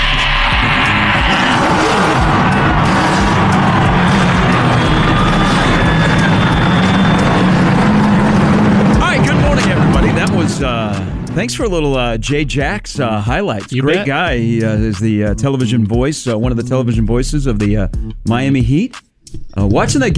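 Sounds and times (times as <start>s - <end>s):
crowd din: 0.0s - 11.4s
race car engines starting and revving: 0.0s - 11.5s
speech: 11.4s - 20.1s.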